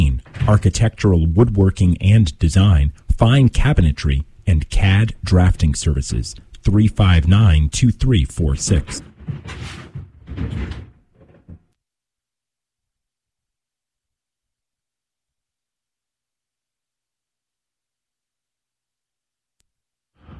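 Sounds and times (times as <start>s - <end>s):
radio station door opened and pulled shut with rattling thumps: 0.0s - 1.0s, 9.0s - 11.8s
speech: 0.5s - 9.8s.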